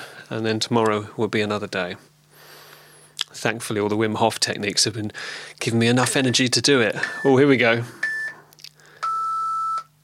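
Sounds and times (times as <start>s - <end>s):
speech: 0.3s - 2.1s, 3.4s - 8.0s
electronic timer beep: 8.0s - 8.4s, 9.0s - 9.9s.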